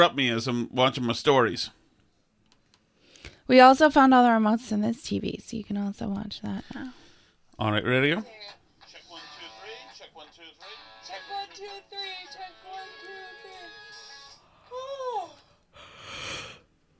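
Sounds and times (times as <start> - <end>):
speech: 0.0 - 1.8, 3.5 - 7.0, 7.6 - 8.6
person yawning: 14.6 - 16.6.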